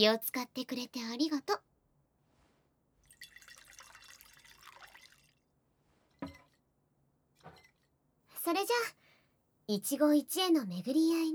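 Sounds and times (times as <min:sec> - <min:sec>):
speech: 0:00.0 - 0:01.7, 0:08.4 - 0:09.0, 0:09.7 - 0:11.3
drink pouring into a glass: 0:03.0 - 0:05.5
glass or bottle set down knocks: 0:06.2 - 0:06.5.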